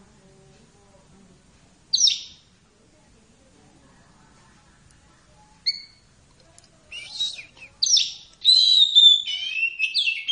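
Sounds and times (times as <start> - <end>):
Oriental magpie-robin giving whistles and scratchy phrases: 1.9 - 2.4, 5.6 - 6.0, 6.9 - 10.3.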